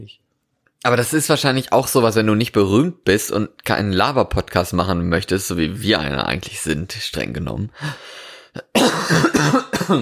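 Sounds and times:
speech: 0:00.0 - 0:09.9
harsh coughing: 0:08.6 - 0:09.9.

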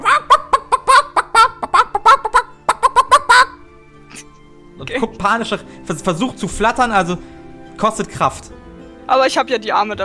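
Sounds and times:
voice imitating an agitated clucking chicken: 0:00.0 - 0:04.2
speech: 0:05.2 - 0:10.0.

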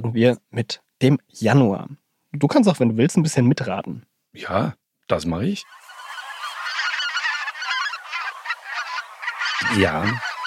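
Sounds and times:
speech: 0:00.0 - 0:05.8, 0:09.7 - 0:10.3
chorus of geese honking with harsh nasal cries: 0:05.6 - 0:10.4.

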